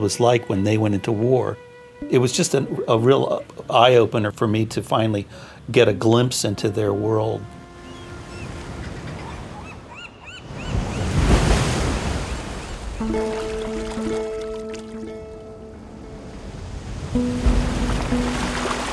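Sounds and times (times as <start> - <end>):
sustained tonal hum: 0.0 - 4.1, 13.0 - 18.9
speech: 0.0 - 7.6
light wind: 0.0 - 18.9
gentle sea waves washing onto a beach: 7.3 - 18.9.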